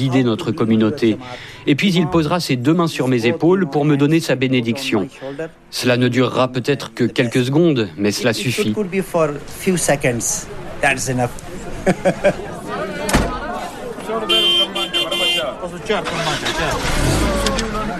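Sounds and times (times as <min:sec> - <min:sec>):
speech: 0:00.0 - 0:12.5, 0:15.6 - 0:17.2
bus engines starting and rumbling: 0:00.0 - 0:17.9
busy crowd of talking voices: 0:00.0 - 0:17.9
laughter: 0:11.5 - 0:13.1, 0:16.0 - 0:17.9
sharp door slam: 0:13.1 - 0:13.4.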